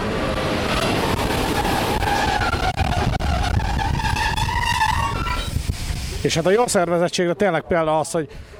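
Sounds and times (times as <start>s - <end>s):
private railway train arriving at station: 0.0s - 6.8s
train brakes or wheels squealing: 0.6s - 7.0s
speech: 6.2s - 8.5s.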